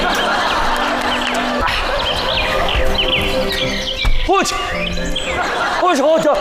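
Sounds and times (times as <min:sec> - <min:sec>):
laughter: 0:00.0 - 0:03.8, 0:05.0 - 0:06.3
steady busy outdoor background: 0:00.0 - 0:06.3
small birds chirping and tweeting: 0:00.5 - 0:05.4
speech: 0:04.3 - 0:05.0.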